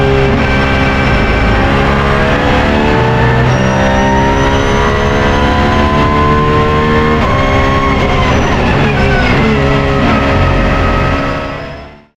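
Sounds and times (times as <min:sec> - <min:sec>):
4.2-litre race car engine revving on a track: 0:00.0 - 0:12.1.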